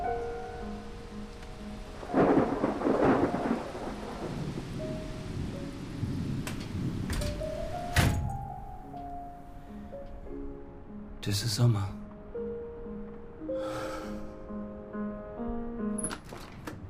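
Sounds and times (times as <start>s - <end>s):
steady rain: 0.0s - 15.2s
thunder: 2.0s - 8.5s
speech: 11.3s - 12.0s.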